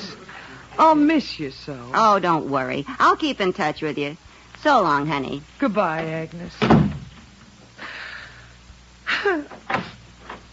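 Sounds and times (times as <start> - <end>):
speech: 0.8 - 6.8, 9.2 - 9.9
door creaking and banging shut: 6.6 - 7.3, 9.5 - 10.5.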